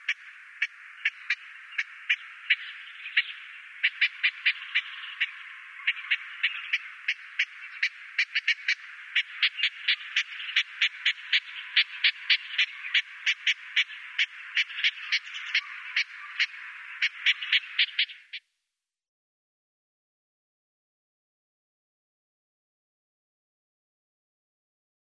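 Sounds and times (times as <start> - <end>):
Eastern olivaceous warbler giving dry ticking clicks: 0.0 - 18.5.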